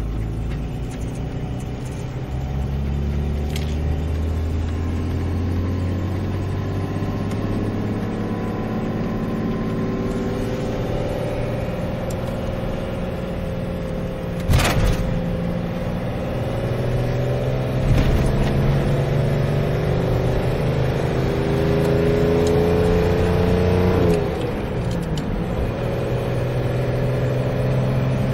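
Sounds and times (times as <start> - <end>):
car engine rumbling and revving: 0.0 - 28.3.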